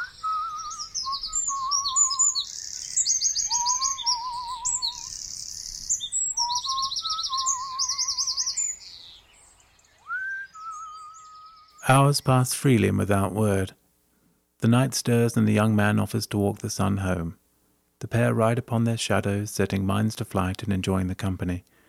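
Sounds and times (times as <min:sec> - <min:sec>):
busy chorus of birds chirping, trilling and warbling: 0:00.0 - 0:12.2
speech: 0:11.9 - 0:13.8, 0:14.6 - 0:17.4, 0:18.0 - 0:21.7.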